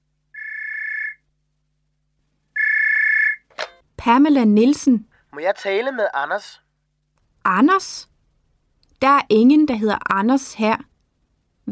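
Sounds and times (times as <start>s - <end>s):
telephone ringing with electronic trill: 0.4s - 1.2s, 2.6s - 3.9s
speech: 4.0s - 6.6s, 7.4s - 8.1s, 9.0s - 10.9s.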